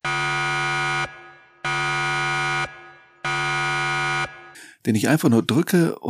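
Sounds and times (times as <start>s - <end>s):
harsh electronic alarm buzzer blaring: 0.0s - 4.6s
speech: 4.8s - 6.0s.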